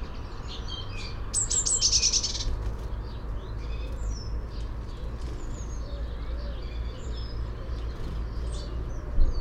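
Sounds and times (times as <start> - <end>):
faint twittering from other birds: 0.0 - 9.4
Cyanistes caeruleus Eurasian blue tit thin high notes and dry rapid scolding churr: 1.0 - 2.6.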